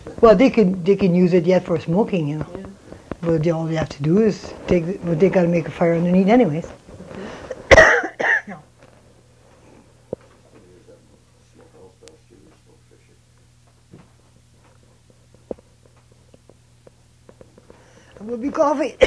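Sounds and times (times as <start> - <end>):
low steady hum: 0.0 - 19.0
speech: 0.1 - 2.6, 3.2 - 6.8, 18.7 - 19.0
person coughing from a tickle in the throat: 7.7 - 8.6.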